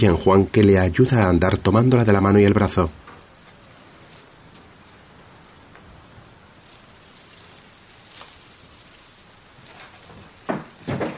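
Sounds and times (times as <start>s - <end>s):
speech: 0.0s - 3.0s
faint hiss: 0.0s - 11.1s
house door being closed with soft thuds: 10.5s - 11.1s.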